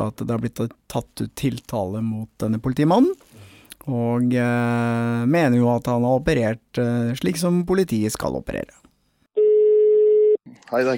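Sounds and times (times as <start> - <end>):
speech: 0.0 - 3.2, 3.8 - 8.8, 10.7 - 10.9
telephone ringback tone: 9.4 - 10.4.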